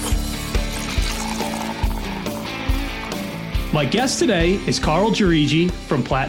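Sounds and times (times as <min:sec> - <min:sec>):
drink pouring into a glass: 0:00.0 - 0:03.7
speech: 0:03.7 - 0:06.2.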